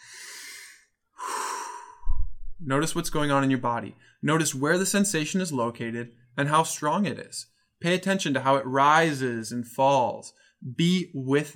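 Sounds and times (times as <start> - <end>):
deep breaths for a guided relaxation exercise: 0.0 - 2.4
speech: 2.6 - 11.5.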